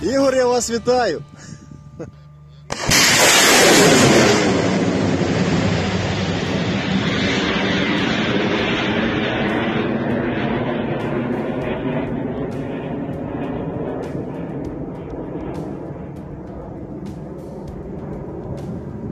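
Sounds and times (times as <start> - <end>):
speech: 0.0 - 1.3, 2.0 - 2.2, 3.8 - 4.6
air defense missile launch blast: 2.7 - 11.2
air defense missile roaring rocket rush: 2.7 - 19.0.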